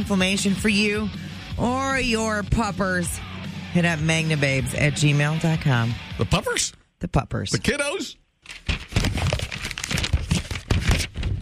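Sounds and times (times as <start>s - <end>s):
speech: 0.0s - 8.2s
papers shuffling: 8.4s - 11.3s.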